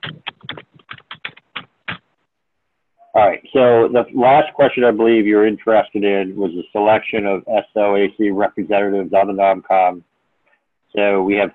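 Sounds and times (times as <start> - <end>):
heavy typing on a computer keyboard: 0.0 - 2.0
speech: 3.2 - 10.1, 10.9 - 11.5.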